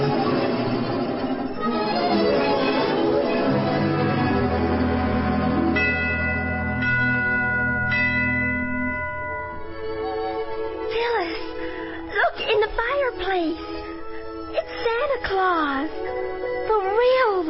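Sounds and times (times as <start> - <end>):
sustained humming musical backdrop: 0.0 - 17.4
sleigh bells jingling: 4.4 - 11.4.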